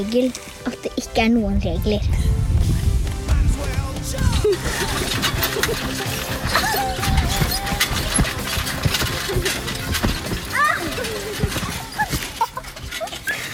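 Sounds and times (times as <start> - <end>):
speech: 0.0 - 2.3, 4.1 - 7.2
trampoline springs creaking: 2.2 - 13.5
children bouncing on a trampoline: 2.5 - 13.5
trampoline rattling: 3.6 - 13.5
laughter: 4.2 - 9.9, 10.8 - 13.5
children squealing and talking excitedly: 6.4 - 9.1, 10.4 - 13.5.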